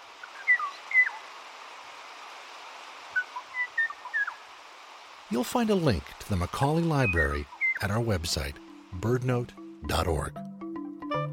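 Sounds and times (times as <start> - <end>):
hiss: 0.0 - 11.3
Bachman's warbler or Kauai O'o singing in whistled notes and chirps: 0.2 - 1.2, 3.2 - 4.4, 7.0 - 8.0
speech: 5.3 - 10.5.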